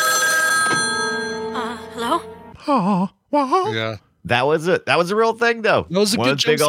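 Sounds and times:
loud old landline telephone bell ringing: 0.0 - 2.4
startled wavering vocal cries and moans: 1.6 - 4.0
speech: 2.2 - 6.6.

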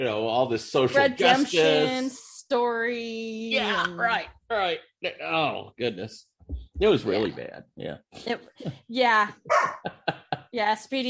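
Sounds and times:
laughter: 0.0 - 2.0, 9.6 - 10.4
speech: 0.0 - 11.0
dog yelping: 9.5 - 9.8
dog barking: 9.5 - 9.9.

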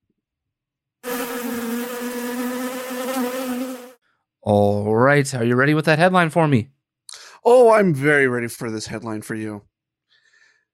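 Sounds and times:
bee buzz sound effect: 1.0 - 4.0
speech: 4.4 - 6.8, 7.4 - 9.7.

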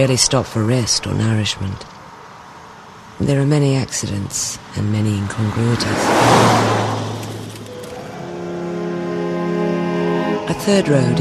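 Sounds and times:
speech: 0.0 - 2.0, 3.2 - 6.9, 10.6 - 11.1
Mercedes-Benz car road noise near Belgrade: 0.0 - 11.1
Mercedes-Benz car engine droning: 4.6 - 11.1.

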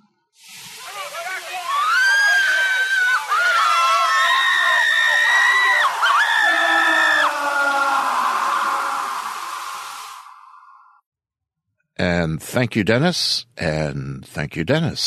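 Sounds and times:
many people screaming together: 0.7 - 11.0
speech: 12.3 - 15.0.

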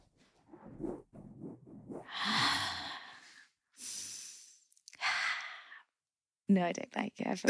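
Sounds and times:
slow heavy breathing into a microphone for ASMR: 2.0 - 4.2
speech: 6.5 - 7.4.

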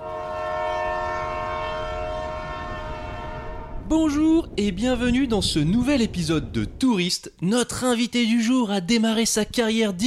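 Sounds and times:
train horn blaring: 0.0 - 3.9
low rumble of a moving train: 0.0 - 6.9
speech: 3.9 - 10.0.

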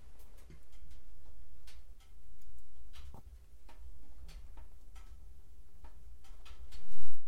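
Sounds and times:
wood crackling in a fireplace: 0.0 - 7.2.

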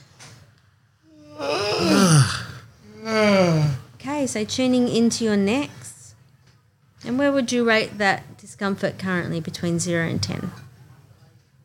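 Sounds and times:
person yawning while stretching: 1.1 - 3.9
speech: 4.3 - 5.8, 7.1 - 10.6.

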